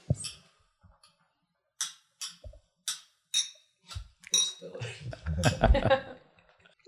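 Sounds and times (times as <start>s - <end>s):
glasses of a Sazerac-style cocktail clinking in a toast: 1.8s - 4.8s
laughter: 4.7s - 6.3s.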